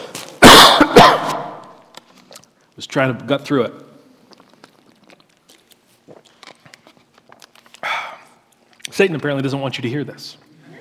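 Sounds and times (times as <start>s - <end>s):
person clearing throat and coughing from a tickle in the throat: 0.4s - 1.6s
speech: 2.9s - 3.8s, 9.0s - 10.5s.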